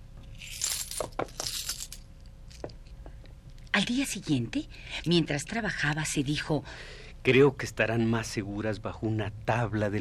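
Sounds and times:
coins clinking and jingling as they are gathered and set down: 0.3 - 2.7
speech: 3.8 - 9.9.

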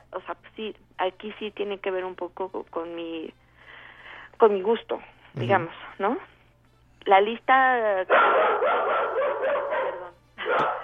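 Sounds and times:
speech: 0.2 - 3.4, 4.4 - 6.3, 7.0 - 8.5
dog barking: 8.1 - 10.8.

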